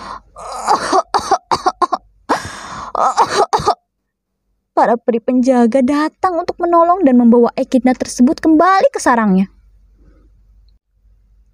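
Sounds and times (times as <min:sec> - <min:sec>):
voice imitating an echidna's coughing fit: 0:00.4 - 0:02.0, 0:02.9 - 0:03.8
speech: 0:04.8 - 0:09.6.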